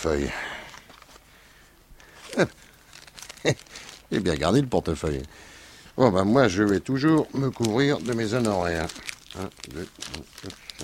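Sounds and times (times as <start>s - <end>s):
speech: 0.0s - 0.5s, 2.4s - 2.6s, 3.4s - 10.8s
paper letter crinkling as it is handled: 0.7s - 1.3s, 2.0s - 5.3s, 6.2s - 10.8s.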